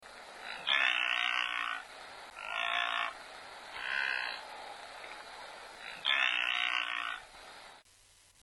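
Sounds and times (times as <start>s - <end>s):
wildebeest harsh nasal grunts: 0.4s - 4.5s, 5.7s - 7.3s.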